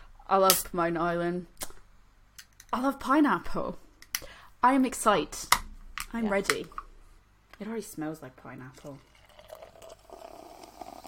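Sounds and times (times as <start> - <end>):
speech: 0.3 - 1.5, 2.7 - 3.8, 4.6 - 6.8, 7.6 - 9.1
pineapple dry hop sour beer pouring from a can into a glass: 8.7 - 11.0.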